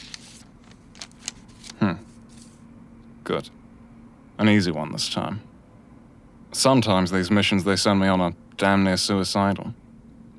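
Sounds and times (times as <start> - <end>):
envelope torn open: 0.0 - 2.5
paper sheet pulled out of an envelope: 0.0 - 2.6
speech: 1.8 - 2.0, 3.3 - 3.6, 4.4 - 5.5, 6.5 - 9.8.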